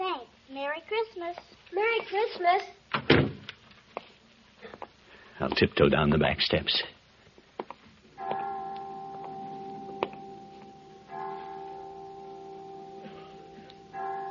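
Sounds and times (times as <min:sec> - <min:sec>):
speech: 0:00.8 - 0:03.2, 0:05.4 - 0:07.0
clock chimes striking five: 0:08.2 - 0:14.2.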